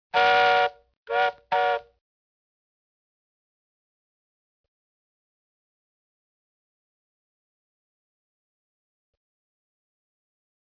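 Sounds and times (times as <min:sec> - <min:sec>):
toy train toot: 0:00.1 - 0:01.9.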